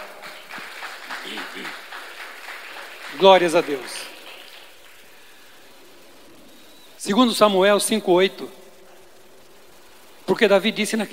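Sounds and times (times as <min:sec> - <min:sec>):
audience applauding after a Bible reading: 0:00.0 - 0:06.3
speech: 0:01.2 - 0:01.8, 0:03.1 - 0:04.1, 0:07.0 - 0:08.6, 0:10.3 - 0:11.1.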